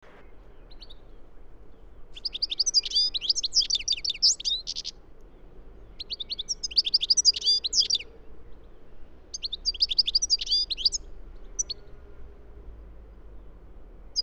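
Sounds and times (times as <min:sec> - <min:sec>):
European goldfinch Carduelis carduelis twittering: 0:02.2 - 0:04.9, 0:06.0 - 0:08.0, 0:09.3 - 0:11.8.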